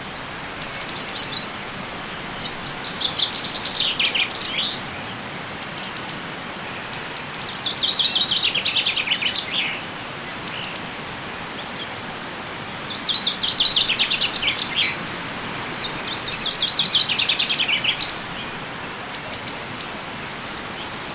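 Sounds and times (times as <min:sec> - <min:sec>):
Common chaffinch song: 0:00.0 - 0:21.1.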